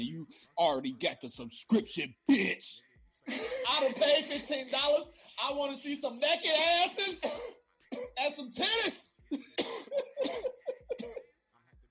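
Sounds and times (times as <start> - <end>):
speech: 0.0 - 10.6
harsh raspy coughs in a closed room: 7.0 - 8.2, 9.3 - 11.3.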